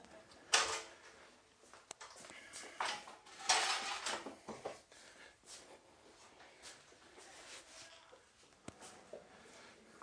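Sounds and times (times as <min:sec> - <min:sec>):
church chairs being handled and stacked: 0:02.8 - 0:04.7.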